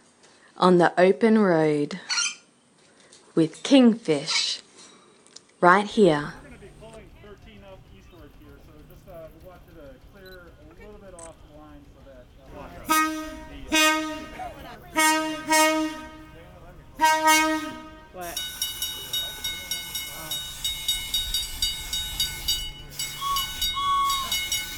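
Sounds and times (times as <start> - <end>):
speech: 0.6 - 2.1, 3.4 - 4.4, 5.6 - 6.4
train cars rolling over rail joints: 6.0 - 24.7
train horn blasts: 12.6 - 18.4, 21.8 - 24.7
high squeal of train: 21.8 - 24.7.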